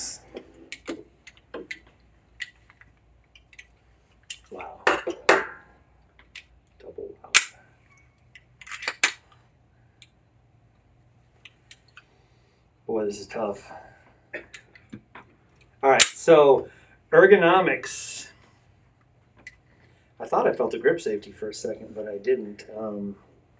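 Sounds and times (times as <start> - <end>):
pistol magazine being inserted and handled, metallic clicks and rattles: 0.8 - 3.7, 7.4 - 7.6, 8.3 - 9.2, 16.0 - 16.2
speech: 13.0 - 13.9, 16.2 - 18.1, 20.3 - 23.3.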